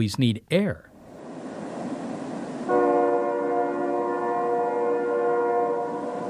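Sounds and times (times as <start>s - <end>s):
speech: 0.0s - 0.9s
train horn: 2.7s - 6.2s.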